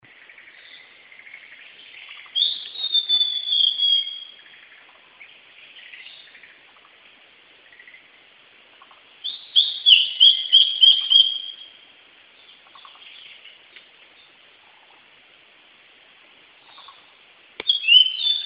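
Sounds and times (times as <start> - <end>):
blue-and-white flycatcher whistled song: 2.3 - 4.4, 9.2 - 11.8, 17.6 - 18.4.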